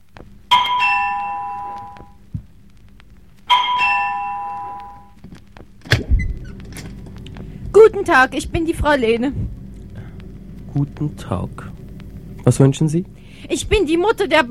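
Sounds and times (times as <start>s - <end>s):
doorbell chime: 0.5s - 2.2s, 3.5s - 5.2s
heavy thunk of a door being opened: 5.8s - 7.2s
speech: 7.9s - 9.6s, 10.8s - 11.7s, 12.4s - 14.5s.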